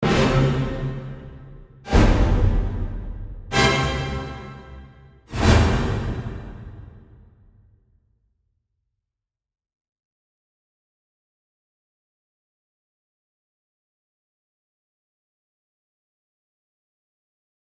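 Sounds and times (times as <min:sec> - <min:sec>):
space symphonic hits: 0:00.0 - 0:07.2.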